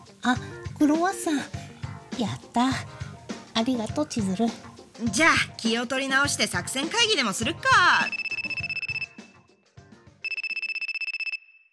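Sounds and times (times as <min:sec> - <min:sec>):
speech: 0:00.2 - 0:01.6, 0:02.2 - 0:08.6
phone ringtone with bright warbling trill: 0:08.0 - 0:09.2, 0:10.2 - 0:11.6.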